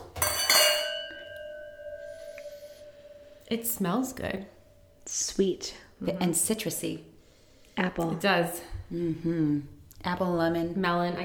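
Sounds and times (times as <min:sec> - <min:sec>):
wine glasses clinking in a toast: 0:00.0 - 0:05.0
speech: 0:03.5 - 0:07.1, 0:07.8 - 0:11.2.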